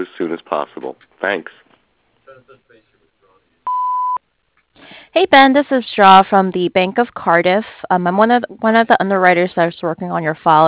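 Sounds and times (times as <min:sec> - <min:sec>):
speech: 0:00.0 - 0:01.6, 0:04.8 - 0:10.6
voicemail beep: 0:03.7 - 0:04.2.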